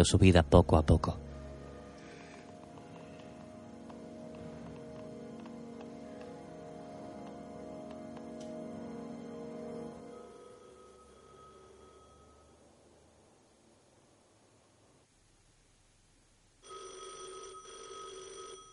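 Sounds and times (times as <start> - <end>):
speech: 0.0 - 1.2
telephone bell ringing in a room: 10.0 - 12.6, 16.6 - 18.7.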